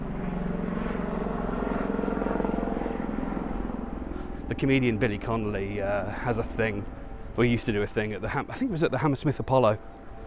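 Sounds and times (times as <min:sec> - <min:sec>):
low-flying helicopter passing overhead: 0:00.0 - 0:10.2
speech: 0:04.5 - 0:10.0.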